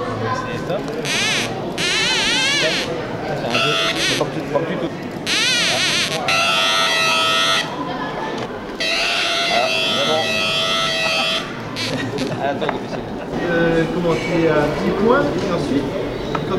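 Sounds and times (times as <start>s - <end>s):
people talking in a busy room: 0.0s - 16.5s
loud harsh electronic alarm buzzer: 1.0s - 4.5s, 5.2s - 7.8s, 8.8s - 12.3s
laughter: 9.7s - 14.3s.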